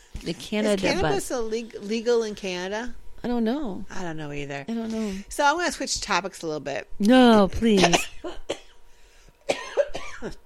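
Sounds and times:
speech: 0.2s - 8.1s, 10.2s - 10.4s
person coughing: 7.8s - 8.7s, 9.5s - 10.4s.

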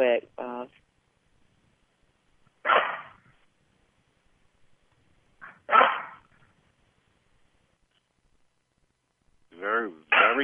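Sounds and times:
blind dog barking: 2.6s - 3.2s, 5.4s - 6.3s, 10.1s - 10.4s.

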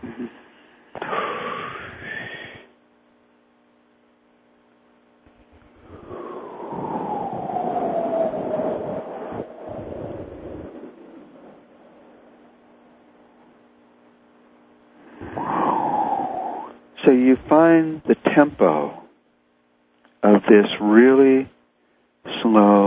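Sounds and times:
person breathing very slowly and loudly in a demonstration: 0.2s - 2.7s, 5.4s - 13.6s, 15.0s - 16.8s
speech: 17.0s - 19.0s, 20.2s - 21.5s, 22.5s - 22.8s.

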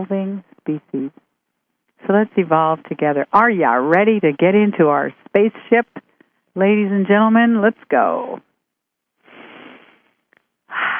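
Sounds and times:
speech: 0.0s - 1.2s, 2.0s - 6.0s, 6.6s - 8.5s
deep breaths taken to relax: 9.2s - 10.9s.

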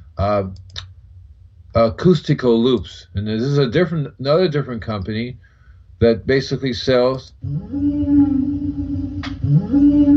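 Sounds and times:
speech: 0.2s - 0.8s, 1.8s - 10.1s
deep sustained whale call: 7.5s - 10.1s.

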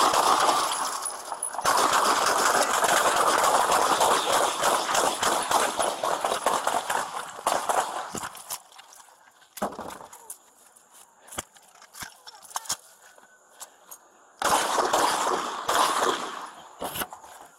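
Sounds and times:
gunshots in a body-camera shootout: 0.0s - 8.4s, 14.4s - 17.2s
dense stretch of rapid gunfire cracks: 0.0s - 8.5s, 14.4s - 16.7s.

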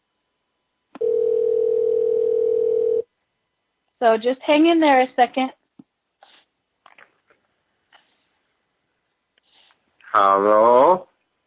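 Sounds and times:
telephone dial tone while a dropped call is reconnected on another phone: 1.0s - 3.0s
speech: 4.0s - 5.6s, 10.2s - 11.0s.

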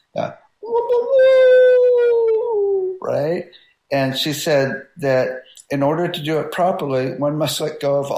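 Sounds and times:
speech: 0.1s - 1.4s, 3.1s - 8.1s
person imitating a wolf howl with their voice: 0.6s - 3.1s.

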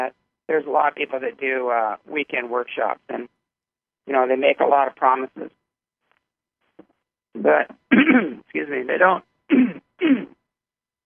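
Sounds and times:
speech: 0.0s - 3.4s, 4.0s - 5.6s, 7.4s - 10.4s
person clearing throat: 7.9s - 8.5s, 9.5s - 10.5s.

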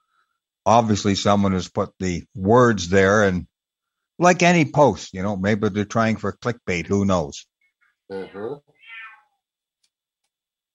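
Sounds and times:
speech: 0.7s - 3.5s, 4.2s - 7.5s, 8.1s - 8.7s
cat meowing: 8.1s - 9.4s.

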